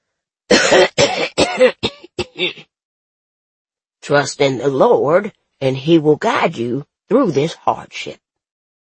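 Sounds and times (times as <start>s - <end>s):
wet phlegmy coughing fit: 0.5s - 2.7s
speech: 0.7s - 0.9s, 4.1s - 8.2s.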